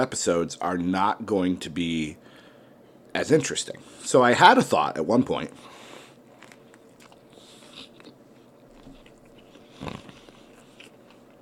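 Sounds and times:
speech: 0:00.0 - 0:02.4, 0:03.1 - 0:05.8
person chewing with soft crunchy bites: 0:06.1 - 0:11.4.

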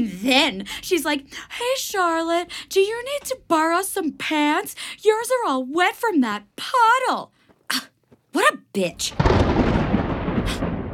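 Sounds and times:
speech: 0:00.0 - 0:09.7
brief hissing crackle: 0:09.1 - 0:10.9
deep rolling thunder rumble: 0:09.1 - 0:10.9.

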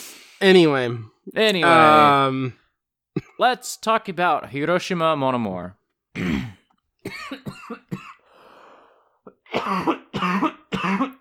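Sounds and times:
speech: 0:00.4 - 0:02.6, 0:03.4 - 0:07.5
harsh coughing fit: 0:03.2 - 0:03.4, 0:06.2 - 0:08.3, 0:09.3 - 0:11.2
raspy drawn-in breath: 0:08.2 - 0:09.2.

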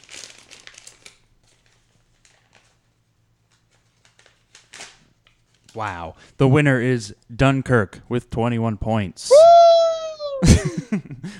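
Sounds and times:
paper envelope being torn open at an awards announcement: 0:00.0 - 0:02.8, 0:03.7 - 0:05.8
speech: 0:05.8 - 0:09.4, 0:10.4 - 0:11.3
laughter: 0:09.3 - 0:11.3.

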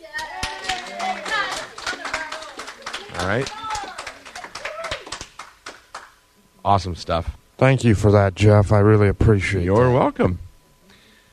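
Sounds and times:
overlapping voices and cheerful calls: 0:00.0 - 0:05.2
small crowd clapping: 0:00.0 - 0:06.2
speech: 0:03.2 - 0:03.6, 0:06.6 - 0:10.4.

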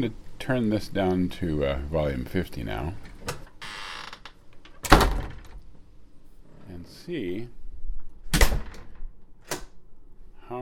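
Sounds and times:
speech: 0:00.0 - 0:03.1, 0:06.8 - 0:07.6
door sliding or creaking: 0:03.0 - 0:05.6
door slamming shut: 0:04.8 - 0:05.6, 0:08.3 - 0:09.7.

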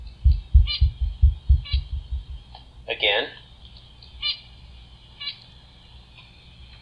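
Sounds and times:
low rhythmic thumping: 0:00.0 - 0:02.6
songbird singing a high syllable: 0:00.1 - 0:02.4
speech: 0:03.0 - 0:03.4.

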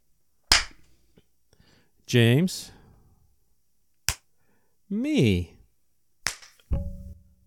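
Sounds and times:
speech: 0:02.1 - 0:02.8, 0:04.9 - 0:05.6
single hand clap for recording sync: 0:04.1 - 0:04.3, 0:06.2 - 0:06.7.

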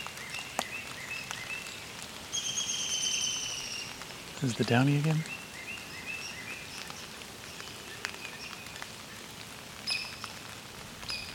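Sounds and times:
steady patter of rain: 0:00.0 - 0:11.3
hairy woodpecker high-pitched squeaks: 0:02.4 - 0:03.8, 0:11.0 - 0:11.3
speech: 0:04.4 - 0:05.4.

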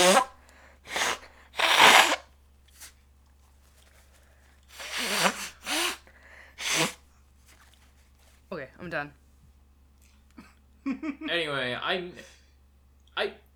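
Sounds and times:
person blowing nose: 0:00.0 - 0:02.2, 0:04.7 - 0:07.0
speech: 0:08.9 - 0:09.2, 0:10.8 - 0:12.4, 0:13.2 - 0:13.4.

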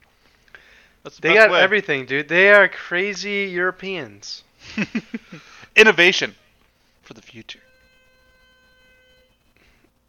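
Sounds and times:
speech: 0:01.0 - 0:06.4, 0:07.1 - 0:07.7
laughter: 0:04.6 - 0:05.6
front door buzzer electronic tone: 0:07.5 - 0:09.9.

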